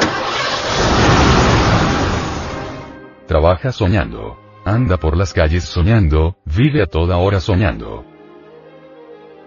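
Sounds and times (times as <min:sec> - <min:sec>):
car engine starting and revving: 0:00.0 - 0:03.0
speech: 0:03.3 - 0:08.1.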